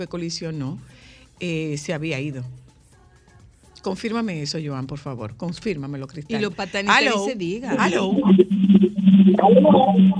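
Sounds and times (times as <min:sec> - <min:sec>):
speech: 0:00.0 - 0:02.6, 0:03.8 - 0:10.1
indistinct voices on the radio: 0:06.4 - 0:08.7
radio playing through a small speaker: 0:06.4 - 0:10.1
constant low hum: 0:07.7 - 0:10.1.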